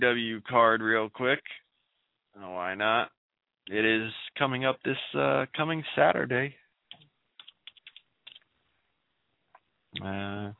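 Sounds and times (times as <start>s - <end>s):
speech: 0.0s - 1.6s, 2.4s - 6.6s, 10.0s - 10.5s
typing on a computer keyboard: 6.9s - 8.4s.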